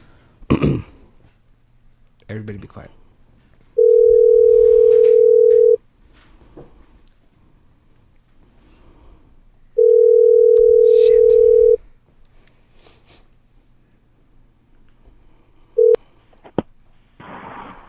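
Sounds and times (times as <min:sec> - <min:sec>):
speech: 0:02.3 - 0:03.0
phone line ringback tone on an outgoing call: 0:03.8 - 0:05.8, 0:09.8 - 0:11.8, 0:15.8 - 0:16.0.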